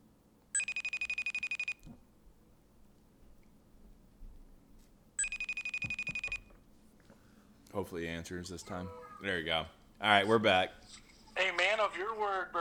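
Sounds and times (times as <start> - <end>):
quiet hum: 0.0 - 12.5
telephone ringing on outgoing call: 0.6 - 1.8, 5.2 - 6.6
speech: 7.8 - 12.5.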